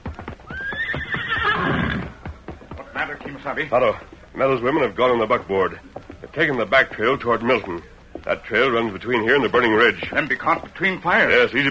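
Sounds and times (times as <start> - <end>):
horse hooves clopping: 0.0 - 11.6
horse whinnying in a long wavering neigh: 0.4 - 3.0
speech: 3.4 - 11.6.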